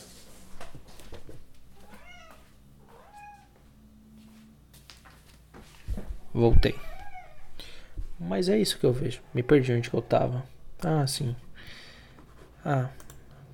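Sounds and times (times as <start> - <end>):
low steady hum: 0.0 - 13.5
cat meowing: 1.8 - 3.6, 6.8 - 7.5
speech: 6.4 - 6.9, 8.3 - 11.4, 12.6 - 13.0.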